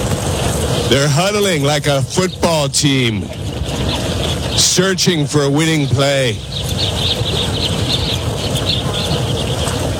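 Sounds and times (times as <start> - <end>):
flock of birds calling at a watering hole in Namibia: 0.0 - 9.9
steady rush of outdoor noise in Namibia: 0.0 - 9.9
speech: 0.9 - 7.7.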